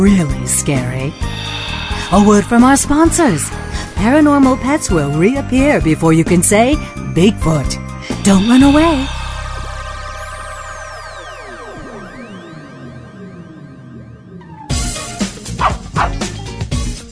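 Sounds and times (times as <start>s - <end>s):
speech: 0.0s - 9.2s
dog barking: 15.6s - 16.2s.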